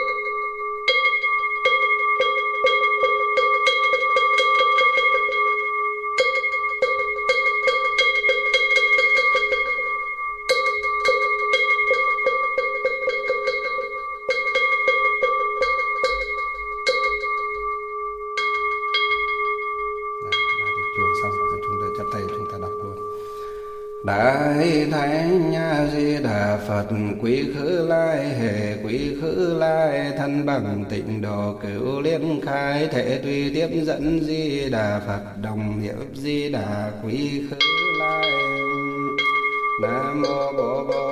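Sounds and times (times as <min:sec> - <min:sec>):
temple bell ringing with a sustained shimmer: 0:00.0 - 0:30.7, 0:36.7 - 0:41.1
speech: 0:26.9 - 0:37.6.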